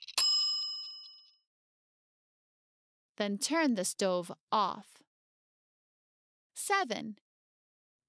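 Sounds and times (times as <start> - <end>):
kitchen timer bell ringing: 0.0 - 1.4
speech: 3.2 - 5.1, 6.6 - 7.2.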